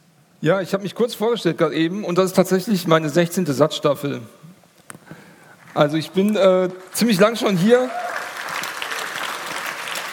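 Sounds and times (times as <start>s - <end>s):
speech: 0.4s - 4.5s, 5.8s - 8.0s
audience clapping: 5.6s - 10.1s.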